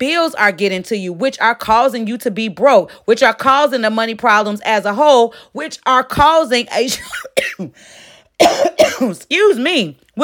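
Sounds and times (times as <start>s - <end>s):
speech: 0.0s - 10.2s
person coughing: 6.9s - 7.8s, 8.4s - 9.2s.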